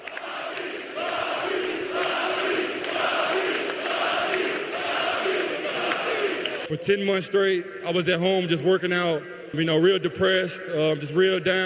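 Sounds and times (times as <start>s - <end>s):
large arena crowd roaring after a game: 0.0s - 6.7s
speech: 6.7s - 11.6s.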